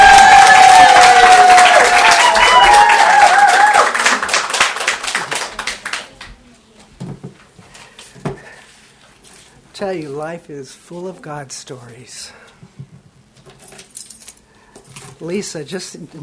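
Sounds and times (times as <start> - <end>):
crowd whoops and cheers for a speaker: 0.0 - 4.2
crowd applause for a speaker: 0.0 - 6.2
speech: 9.8 - 12.8, 15.2 - 16.2.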